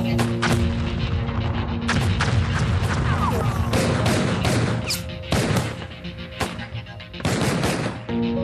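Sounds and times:
heavy booming blasts of missiles and explosions: 0:00.2 - 0:08.1
rapid machine gun volleys: 0:01.9 - 0:08.1
battlefield gunfire of conventional warfare crackling: 0:01.9 - 0:08.3.

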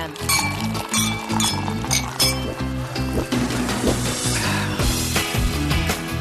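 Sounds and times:
lively music with steady bass line: 0:00.0 - 0:06.1
glasses clinking in a toast: 0:00.2 - 0:03.1.

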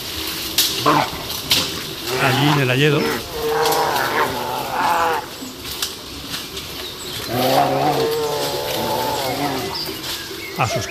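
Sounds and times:
outdoor noise: 0:00.0 - 0:10.9
speech: 0:00.8 - 0:01.2, 0:02.2 - 0:03.3, 0:10.6 - 0:10.9
pair of brown bears in the Valle de Ermo Asturias moaning growls: 0:00.8 - 0:05.6, 0:07.1 - 0:10.9.

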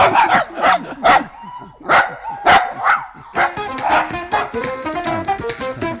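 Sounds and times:
dog barking: 0:00.0 - 0:04.6
laughter: 0:00.0 - 0:05.9.

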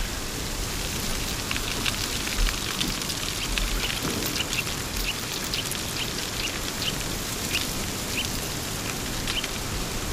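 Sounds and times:
moderate wind whirling leaves: 0:00.0 - 0:10.1.

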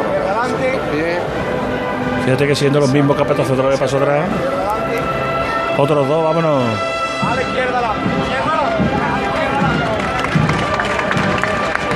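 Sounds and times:
murmuring voices: 0:00.0 - 0:11.9
speech: 0:02.3 - 0:05.2, 0:05.8 - 0:09.9
large crowd applauding: 0:08.0 - 0:11.9.

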